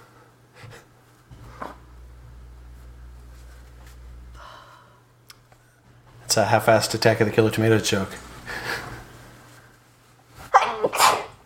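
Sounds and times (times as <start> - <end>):
speech: 6.3 - 8.3
person sneezing: 10.5 - 11.4.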